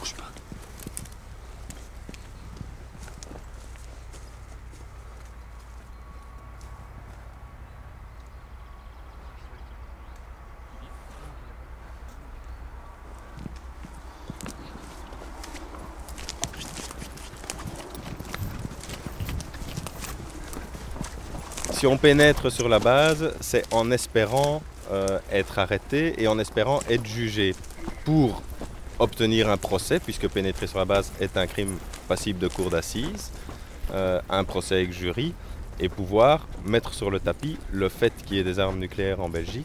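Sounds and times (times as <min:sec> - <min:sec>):
horses walking with hooves clip-clopping: 0:00.0 - 0:39.6
low outdoor rumble: 0:00.0 - 0:39.6
speech: 0:21.8 - 0:39.6.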